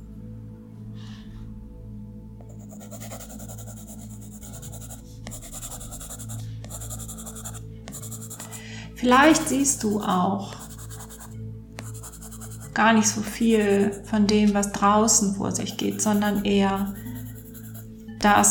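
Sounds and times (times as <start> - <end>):
pen strokes scratching across paper while drawing: 2.4 - 8.6, 9.2 - 12.8, 13.4 - 14.1, 15.6 - 18.4
speech: 9.0 - 10.6, 12.8 - 17.0, 18.2 - 18.4.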